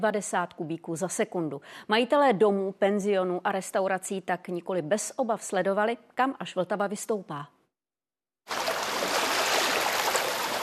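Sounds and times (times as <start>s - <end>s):
speech: 0.0s - 7.6s
flooded river waves lapping against house facade: 8.5s - 10.6s.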